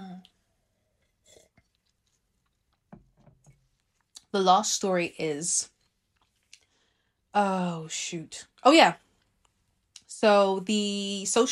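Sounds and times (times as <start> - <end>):
sipping a drink: 0.9 - 3.3
speech: 4.3 - 5.7, 7.4 - 9.0, 10.2 - 11.5.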